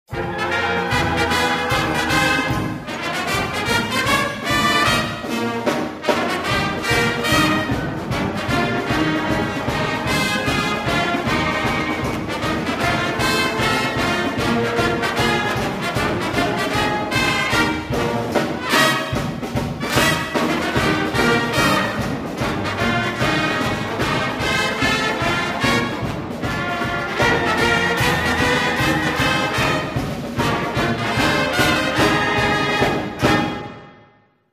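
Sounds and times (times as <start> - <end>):
pep band playing a fight song: 0.1 - 34.0.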